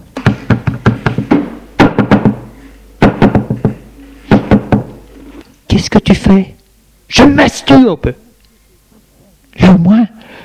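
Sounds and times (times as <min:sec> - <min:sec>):
woman knocking on a toilet door: 0:00.2 - 0:05.0
speech: 0:05.8 - 0:08.2, 0:09.6 - 0:10.2.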